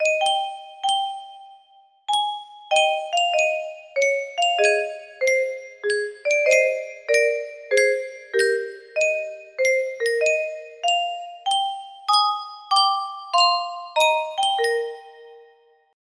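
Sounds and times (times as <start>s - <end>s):
music box playing a custom tune: 0.0s - 15.7s.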